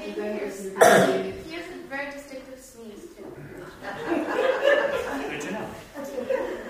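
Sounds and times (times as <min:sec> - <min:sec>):
indistinct talking: 0:00.0 - 0:06.6
single sharp throaty cough: 0:00.8 - 0:01.2
laughter: 0:03.8 - 0:06.6.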